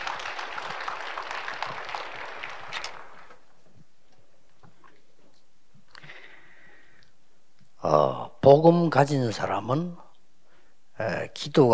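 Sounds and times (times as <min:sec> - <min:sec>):
crowd applauding to greet a reverend coming forward to preach: 0:00.0 - 0:03.4
speech: 0:08.5 - 0:10.0, 0:11.0 - 0:11.7.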